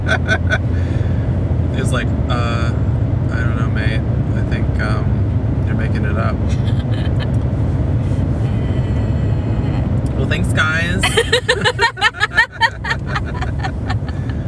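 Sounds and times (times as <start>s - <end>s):
person laughing: 0.0s - 0.6s, 6.5s - 7.4s, 11.0s - 14.4s
low rumble of road noise inside a moving car: 0.0s - 14.4s
speech: 0.1s - 1.1s, 1.7s - 7.3s, 10.3s - 12.4s.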